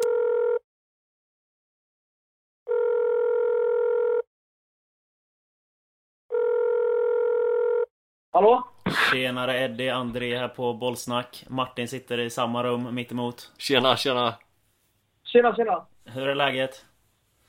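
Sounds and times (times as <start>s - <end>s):
ringback tones from an outgoing phone call: 0.0s - 0.6s, 2.7s - 4.2s, 6.3s - 7.9s
speech: 8.4s - 14.4s, 15.3s - 16.9s.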